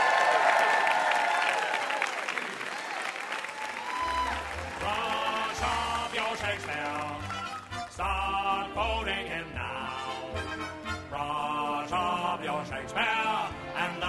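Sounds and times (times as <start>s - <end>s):
cheering: 0.0s - 6.9s
live audience applause: 0.0s - 7.8s
band music: 4.1s - 14.0s.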